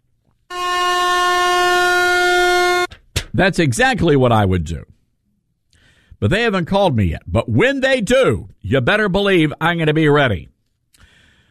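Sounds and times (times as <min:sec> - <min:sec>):
air horn blast: 0:00.5 - 0:03.0
speech: 0:03.4 - 0:04.9, 0:06.2 - 0:10.5.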